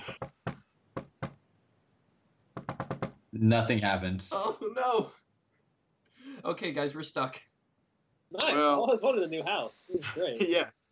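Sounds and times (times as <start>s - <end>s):
sharp knocks on a door: 0.0s - 1.5s, 2.5s - 3.3s
speech: 3.4s - 5.2s, 6.4s - 7.5s, 8.3s - 10.8s.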